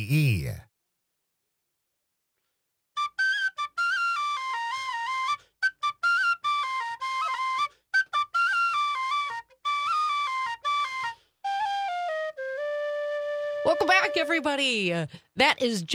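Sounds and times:
speech: 0.0 - 0.7, 13.7 - 15.9
tin whistle playing a lively ornamented melody: 3.0 - 14.5.

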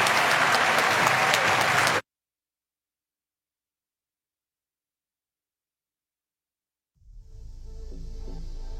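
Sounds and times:
large audience applause: 0.0 - 2.0.

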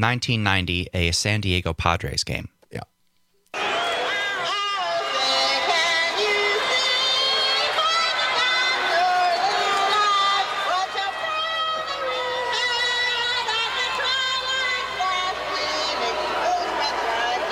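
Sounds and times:
speech: 0.0 - 2.9
large stadium crowd at a baseball game roaring and booing: 3.6 - 17.5
singer singing the national anthem: 3.6 - 17.5.

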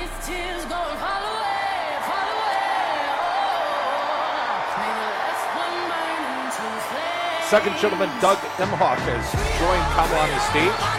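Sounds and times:
huge convention crowd cheering and shouting: 0.0 - 10.9
speech: 7.5 - 10.9.

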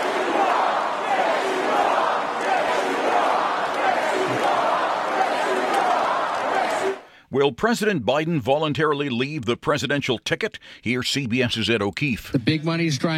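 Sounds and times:
large crowd at a political rally cheering and chanting in unison: 0.0 - 7.1
speech: 7.3 - 13.1.

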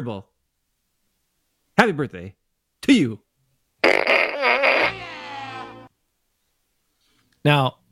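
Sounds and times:
speech: 0.0 - 0.3, 1.8 - 3.3, 7.4 - 7.8
loud raspy electronic fart noise from a novelty fart gun: 3.8 - 5.9.

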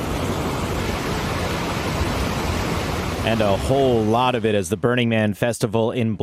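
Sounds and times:
heavy rain pouring down: 0.0 - 4.8
speech: 3.2 - 6.2.

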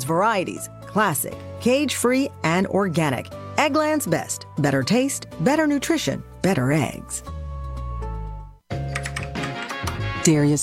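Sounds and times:
speech: 0.0 - 7.4, 10.3 - 10.6
steady loud music: 0.0 - 10.6
computer keyboard keys tapped to enter a zip code: 8.9 - 10.0.

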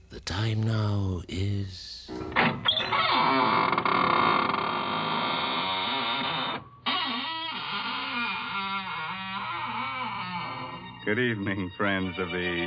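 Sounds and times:
speech: 0.4 - 3.8, 11.1 - 12.6
squeaking door opening: 2.0 - 11.2.

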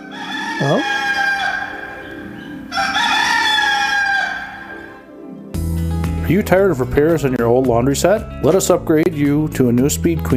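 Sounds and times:
rooster crowing a strained drawn-out cock-a-doodle-doo: 0.0 - 5.1
speech: 0.6 - 1.0, 6.3 - 10.3.

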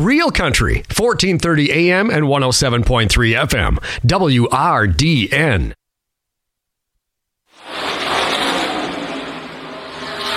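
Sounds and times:
speech: 0.0 - 5.8
stock race cars roaring as they lap a motor speedway: 7.6 - 10.3.

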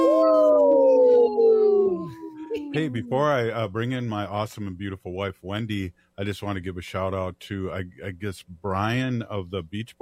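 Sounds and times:
people imitating a wolf howl: 0.0 - 3.4
speech: 2.8 - 10.0.

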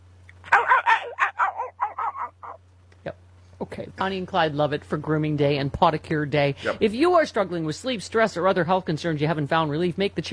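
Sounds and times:
low steady hum: 0.0 - 10.3
distant dog barking: 0.4 - 2.6
speech: 4.0 - 10.3.

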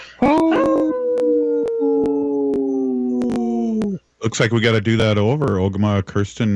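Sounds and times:
people howling in imitation of wolves: 0.2 - 4.0
speech: 4.3 - 6.5.

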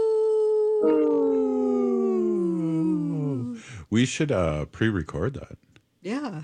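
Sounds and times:
person imitating a wolf howl: 0.0 - 3.6
speech: 0.8 - 1.2, 3.9 - 6.4.

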